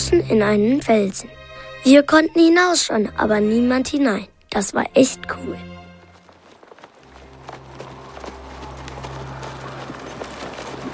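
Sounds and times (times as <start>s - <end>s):
speech: 0.1s - 5.7s
horses' hooves clip-clopping: 5.6s - 10.9s.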